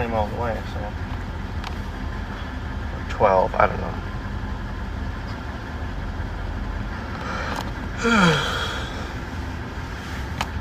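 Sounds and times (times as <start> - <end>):
steady rumble of wind or engine noise: 0.0 - 10.6
speech: 0.1 - 1.1, 3.2 - 4.1, 8.0 - 8.6
drawn-out yawn: 8.0 - 9.1.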